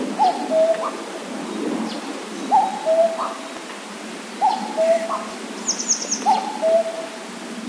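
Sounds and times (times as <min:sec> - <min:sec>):
cuckoo calling: 0:00.2 - 0:00.9, 0:02.5 - 0:03.4, 0:04.4 - 0:07.1.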